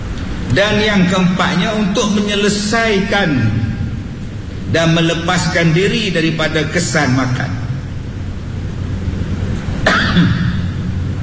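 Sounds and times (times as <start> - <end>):
steady low hum: 0.0 - 11.2
speech: 0.6 - 3.6, 4.7 - 7.6, 10.1 - 10.4
single sharp cough with a short throaty tail: 9.8 - 10.8.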